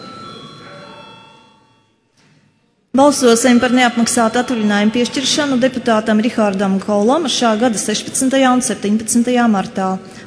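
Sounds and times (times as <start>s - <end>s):
parliamentary voting electric bell ringing in a large room: 0.0s - 2.1s, 3.0s - 9.0s
speech: 3.0s - 10.2s.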